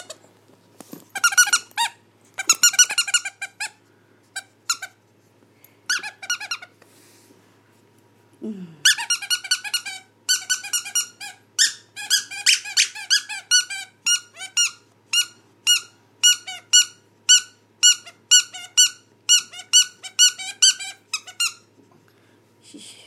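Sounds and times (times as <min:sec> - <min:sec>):
squeaky toy squeezed by a dog: 0:01.2 - 0:03.8, 0:04.4 - 0:05.0, 0:05.9 - 0:06.7, 0:08.9 - 0:21.7.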